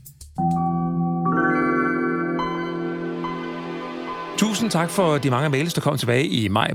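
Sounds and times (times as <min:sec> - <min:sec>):
computer startup sound with a shimmering synth chord: 0:00.7 - 0:05.8
speech: 0:04.4 - 0:06.7.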